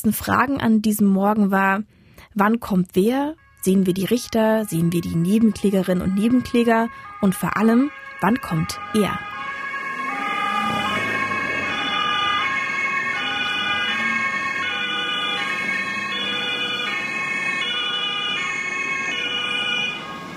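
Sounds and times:
speech: 0.0 - 9.3
two-tone emergency sirens of a convoy delivering a defendant to court: 3.3 - 20.3
convoy engine and road noise: 7.9 - 20.3.

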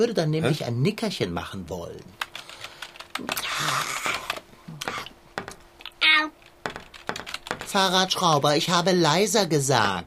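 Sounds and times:
speech: 0.0 - 2.3, 3.2 - 4.1, 7.7 - 10.0
faint steady hum: 0.0 - 10.0
loud typing on a keyboard: 2.2 - 3.3, 6.4 - 8.0.

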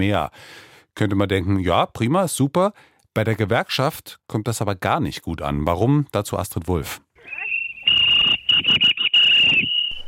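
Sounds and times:
speech: 0.0 - 7.5
strikers blowing whistles, heard over phone: 7.2 - 10.0.

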